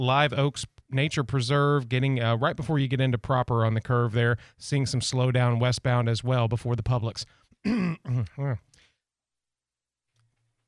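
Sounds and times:
speech: 0.0 - 8.7
person with a cold coughing harshly: 7.7 - 8.5.

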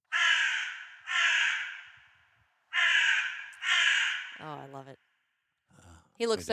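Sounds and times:
crow giving harsh drawn-out caws: 0.1 - 5.3
speech: 4.4 - 5.1, 5.7 - 6.5.

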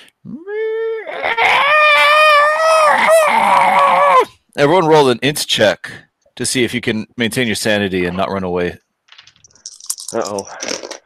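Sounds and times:
voice imitating startled creatures screeching: 0.3 - 4.3
speech: 4.6 - 8.8, 10.1 - 11.0.

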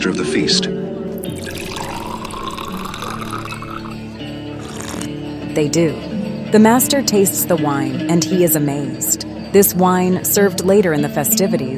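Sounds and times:
speech: 0.0 - 1.6, 5.6 - 11.7
water poured steadily into jars: 1.2 - 5.1.

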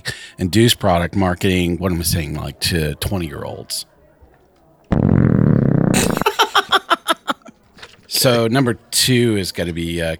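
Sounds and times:
speech: 0.4 - 3.9, 8.1 - 10.1
loud drawn-out belch after drinking: 4.9 - 6.3
rhythmic breathy laughter: 5.9 - 7.5.

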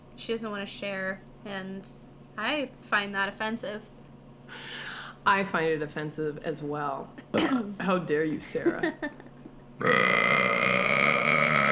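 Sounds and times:
speech: 0.2 - 10.0
loud drawn-out burp: 9.8 - 11.7.

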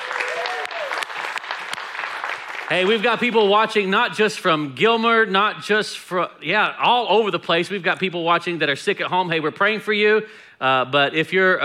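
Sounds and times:
church gathering audience applause: 0.0 - 3.1
speech: 2.7 - 11.6.

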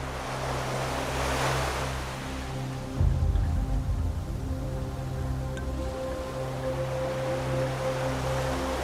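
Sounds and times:
ocean waves rushing: 0.0 - 8.8
low steady droning hum: 2.8 - 7.9.

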